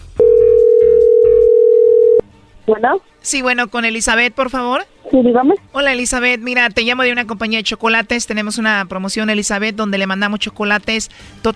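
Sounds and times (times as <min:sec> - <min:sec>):
telephone dial tone as a phone call is being placed: 0:00.2 - 0:02.2
speech: 0:02.7 - 0:11.5.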